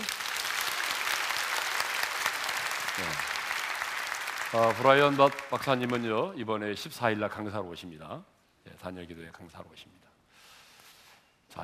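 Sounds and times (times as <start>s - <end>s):
audience applause: 0.0s - 6.3s
speech: 3.0s - 3.3s, 4.5s - 10.1s.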